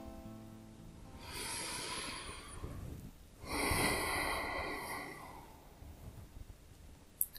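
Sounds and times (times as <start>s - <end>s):
person breathing slowly during a guided breathing exercise: 1.1s - 5.9s.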